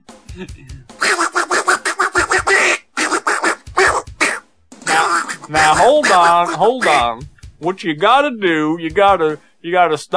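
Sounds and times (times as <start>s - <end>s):
speech: 0.4s - 1.0s, 5.5s - 10.1s
person imitating duck quacks: 1.0s - 7.1s.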